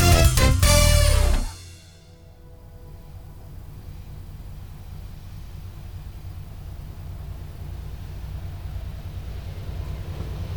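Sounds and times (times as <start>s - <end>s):
train passing: 0.0s - 10.5s.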